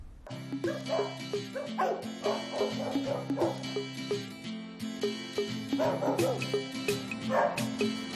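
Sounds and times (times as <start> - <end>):
large German Shepherd police dog barking: 0.3 - 3.9, 5.6 - 8.0.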